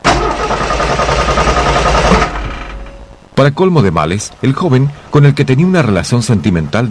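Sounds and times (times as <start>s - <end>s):
car engine cranking without catching: 0.0s - 3.2s
speech: 3.4s - 6.8s.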